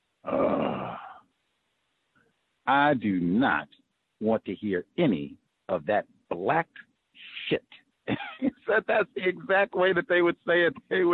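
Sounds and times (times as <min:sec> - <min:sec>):
human voice imitating a groan: 0:00.3 - 0:01.2
speech: 0:02.7 - 0:11.1
laughter: 0:08.1 - 0:11.1.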